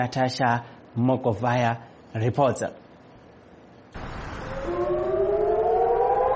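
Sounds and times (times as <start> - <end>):
speech: 0.0 - 2.8
civil defense air raid siren warning of a rocket attack: 4.0 - 6.3.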